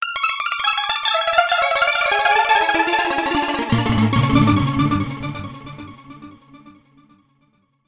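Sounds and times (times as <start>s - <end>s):
arpeggios: 0.6s - 7.0s.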